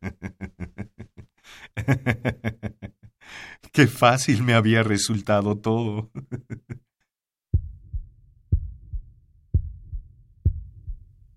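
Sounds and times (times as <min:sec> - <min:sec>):
laughter: 0:00.0 - 0:03.1, 0:06.0 - 0:06.9
speech: 0:01.5 - 0:02.6, 0:03.8 - 0:06.3
muffled deep heartbeat: 0:07.6 - 0:11.3.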